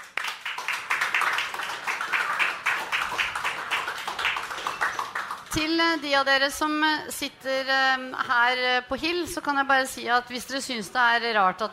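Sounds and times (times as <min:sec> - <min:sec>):
room full of people clapping: 0:00.0 - 0:05.6
speech: 0:05.5 - 0:11.7.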